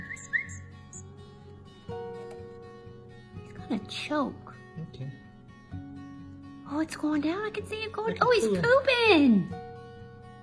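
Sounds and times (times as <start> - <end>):
baby bird chirping: 0.0 - 1.1
speech: 3.7 - 5.8, 6.7 - 9.6.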